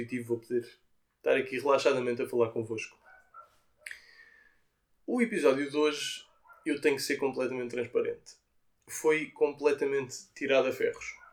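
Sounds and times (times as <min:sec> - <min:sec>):
speech: 0:00.0 - 0:03.0, 0:05.1 - 0:11.2
dogs barking outside: 0:02.8 - 0:04.0, 0:06.0 - 0:07.1, 0:10.9 - 0:11.3.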